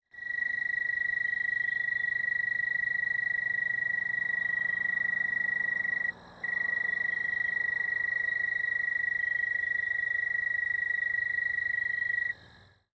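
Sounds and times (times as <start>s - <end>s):
broad-winged tree cricket chirping: 0.1s - 12.9s.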